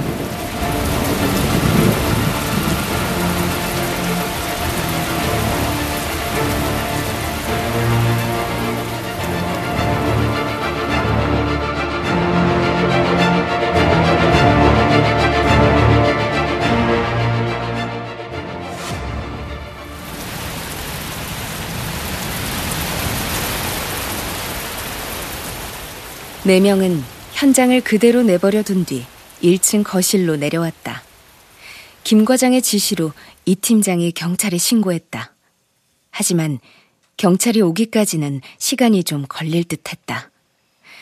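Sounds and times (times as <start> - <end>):
low rumbling undertones: 0.0 - 26.4
heavy rain downpour: 0.0 - 35.0
speech: 26.5 - 31.1, 32.0 - 35.3, 36.1 - 40.3.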